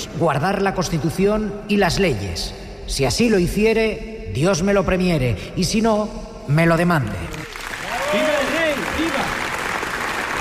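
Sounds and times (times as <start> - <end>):
speech: 0.1 - 7.4
large audience giving a standing ovation in a parliament hall: 7.3 - 10.3.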